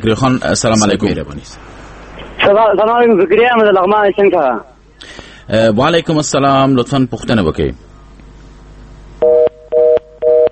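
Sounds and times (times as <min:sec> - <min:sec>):
speech: 0:00.0 - 0:01.8, 0:02.4 - 0:04.7, 0:05.5 - 0:07.9
telephone busy tone after a dropped call: 0:09.2 - 0:10.4.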